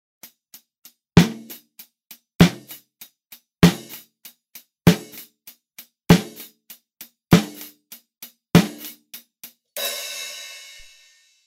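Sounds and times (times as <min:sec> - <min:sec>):
snare drum through Sennheiser MD421 test microphone: 0:01.2 - 0:01.8, 0:02.4 - 0:10.0.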